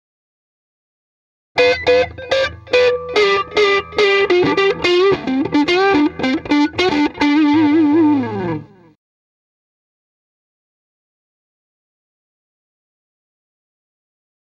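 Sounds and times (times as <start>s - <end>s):
M75 LP guitar neck pickup with light overdrive through JTM45 amp: 1.6s - 9.0s.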